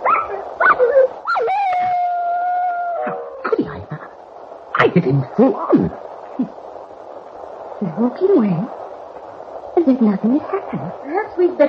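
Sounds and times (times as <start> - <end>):
dog yelping: 0.0 - 3.5
speech: 5.0 - 6.6, 7.8 - 8.8, 9.8 - 11.6.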